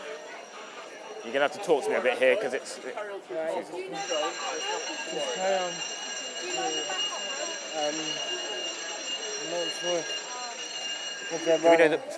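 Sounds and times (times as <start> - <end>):
speech: 1.2 - 7.1, 7.8 - 8.5, 9.4 - 10.2, 11.3 - 12.1
fire alarm steady piercing high tone: 4.0 - 12.1.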